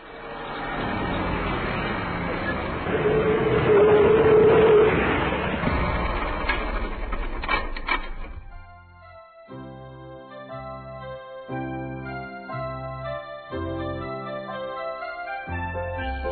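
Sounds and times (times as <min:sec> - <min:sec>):
bus brake squeal as it stops hard: 0:00.0 - 0:07.6
bus engine rumbling: 0:00.0 - 0:08.9
settling rattle: 0:02.8 - 0:08.7.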